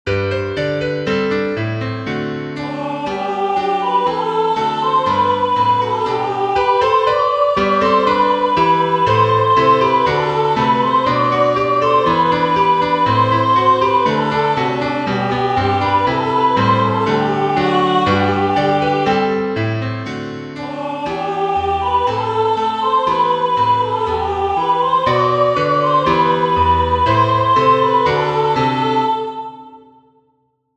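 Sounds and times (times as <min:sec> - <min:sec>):
folk carol for intermediate piano: 0:00.1 - 0:29.7.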